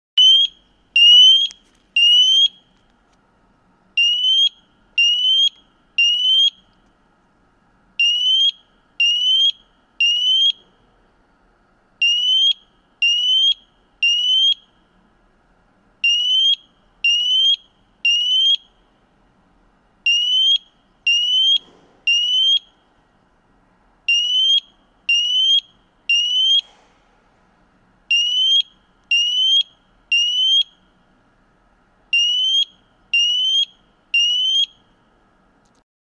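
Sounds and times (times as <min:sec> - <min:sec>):
smoke alarm tone: 0:00.2 - 0:02.6, 0:04.0 - 0:06.6, 0:08.0 - 0:10.6, 0:12.0 - 0:14.6, 0:16.0 - 0:18.7, 0:20.1 - 0:22.7, 0:24.1 - 0:26.6, 0:28.1 - 0:30.8, 0:32.2 - 0:34.8.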